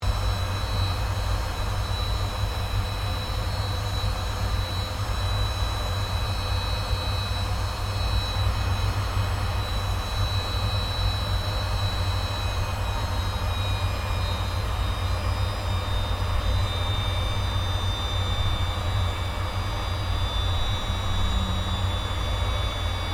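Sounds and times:
CA-27 Sabre F-86 aircraft taxiing heard from interior: 0.0s - 23.1s.

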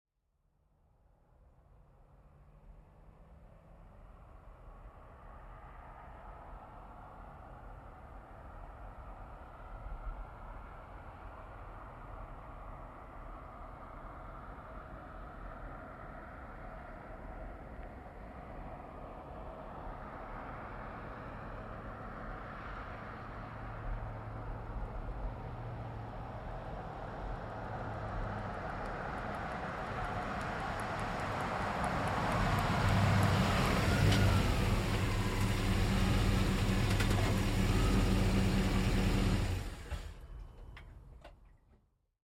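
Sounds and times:
GMC Savana truck pulling up and stopping at medium speed: 20.2s - 41.8s.

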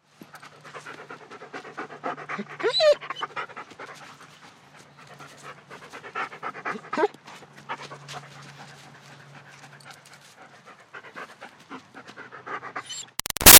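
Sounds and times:
German Shepherd dog panting: 0.0s - 13.2s
German Shepherd dog whining: 2.3s - 3.3s, 12.8s - 13.2s.

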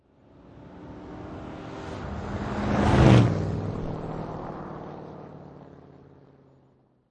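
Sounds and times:
Ford truck driving by left to right: 1.9s - 4.6s.

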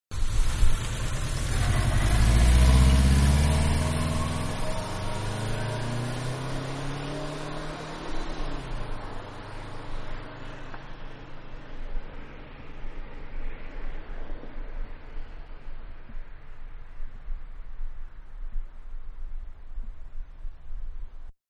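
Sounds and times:
mid size car driving away: 0.1s - 11.9s.

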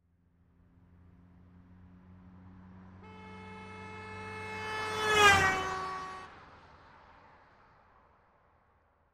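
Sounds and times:
1986 Ford Escort driving by right to left at 55 mph: 2.3s - 6.4s.

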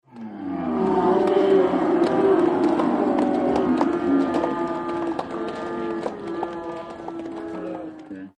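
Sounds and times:
medium size football crowd cheering outdoors: 0.5s - 8.3s.

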